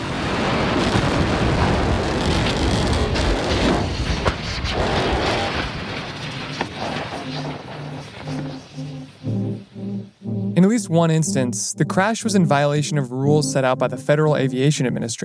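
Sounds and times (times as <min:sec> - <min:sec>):
rocket test launch explosion roar: 0:00.0 - 0:07.2
faint repeating electronic tones: 0:06.8 - 0:14.8
speech: 0:10.9 - 0:15.2.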